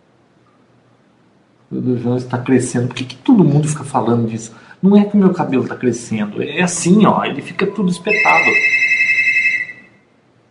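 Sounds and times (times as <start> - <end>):
speech: 1.7 - 8.9
telephone ringing with an electronic trill: 7.0 - 10.1.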